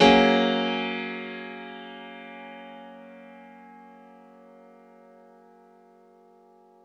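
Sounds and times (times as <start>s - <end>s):
grand piano F sharp add2 chord one shot: 0.0s - 5.1s.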